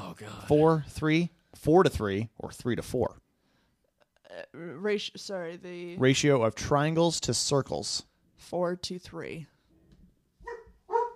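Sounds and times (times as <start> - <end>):
speech: 0.2 - 3.2, 4.3 - 9.5
dog barking: 10.4 - 11.1.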